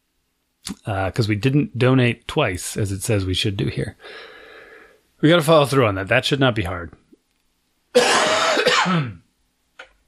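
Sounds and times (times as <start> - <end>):
speech: 0.8 - 4.4, 5.2 - 7.0, 8.8 - 9.2
faint catch of breath: 4.0 - 5.0
person coughing loudly with a harsh raspy burst: 8.0 - 9.2.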